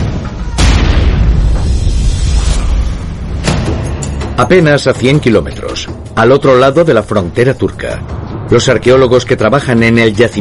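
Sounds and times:
bombs detonating at archaeological sites: 0.0s - 3.9s
sharp booming blasts: 0.0s - 4.0s
speech: 4.4s - 10.3s.

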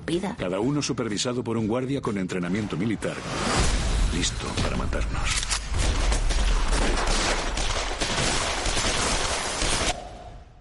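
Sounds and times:
speech: 0.1s - 6.1s
explosions from a TV series: 3.4s - 10.5s
rapid gunfire from a TV series: 5.7s - 10.1s.

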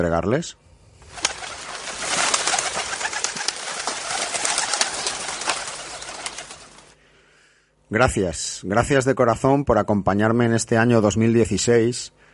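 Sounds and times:
speech: 0.0s - 1.2s, 7.9s - 12.2s
dense steady noise: 0.6s - 7.0s
homing pigeons cooing and murmuring in a flock: 1.0s - 6.9s
pigeon wings fluttering: 1.0s - 7.0s.

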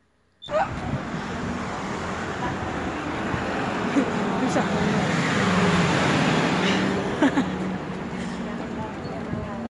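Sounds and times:
steady roar of cars crossing city centre roads at rush hour: 0.2s - 9.7s
people laughing: 6.7s - 7.7s.

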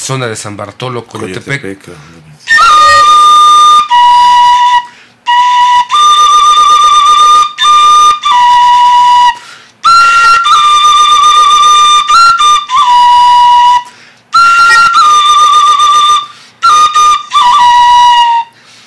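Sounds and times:
speech: 0.0s - 2.8s
clay elongated ocarina tlapilocarina playing a breathy melody: 2.5s - 18.6s.

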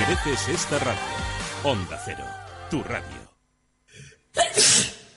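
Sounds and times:
speech: 0.1s - 3.3s
person sneezing: 4.0s - 5.1s.

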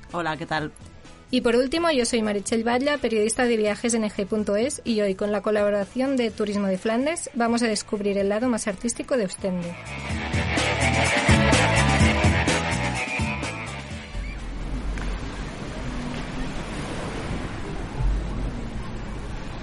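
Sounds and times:
music: 0.0s - 15.0s
speech: 0.1s - 11.2s
sea waves washing onto the shore at Ostend in Flanders: 14.0s - 19.6s.

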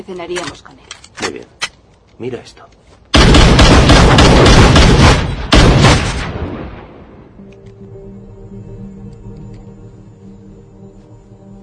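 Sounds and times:
speech: 0.0s - 1.6s, 2.2s - 3.0s
loud bursts of rapid gunfire with echo: 3.2s - 6.4s.

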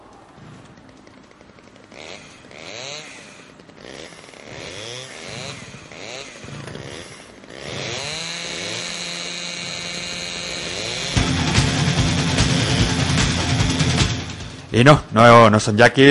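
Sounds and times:
chainsaw engine revving: 0.5s - 14.9s
speech: 14.8s - 16.0s.

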